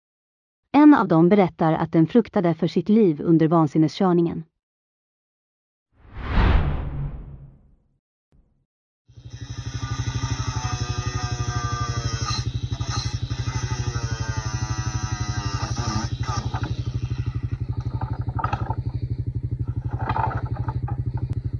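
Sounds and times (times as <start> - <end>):
speech: 0.7 - 4.5
power saw cutting locks off a road barrier: 9.2 - 21.4.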